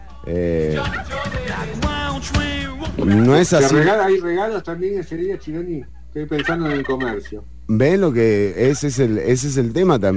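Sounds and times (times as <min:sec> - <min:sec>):
speech: 0:00.2 - 0:10.1
turkey gobbling: 0:00.7 - 0:01.5, 0:02.8 - 0:04.4, 0:05.8 - 0:07.4, 0:08.5 - 0:09.2.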